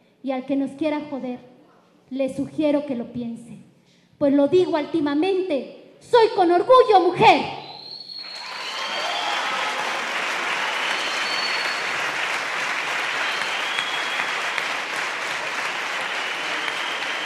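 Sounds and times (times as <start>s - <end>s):
speech: 0.2s - 1.5s, 2.1s - 3.6s, 4.2s - 7.6s
dense steady applause from an audience at a question-and-answer session: 8.2s - 17.2s.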